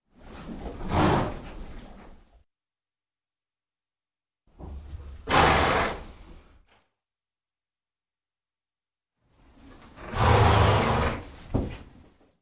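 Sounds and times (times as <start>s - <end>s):
horse snorting: 0.7s - 1.7s, 5.2s - 6.2s, 10.0s - 11.4s.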